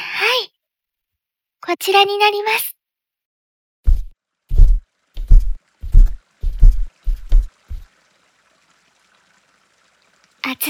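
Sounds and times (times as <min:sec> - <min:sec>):
speech: 0:01.7 - 0:02.8
warm water sloshing and pouring into a foot bath: 0:04.2 - 0:10.6.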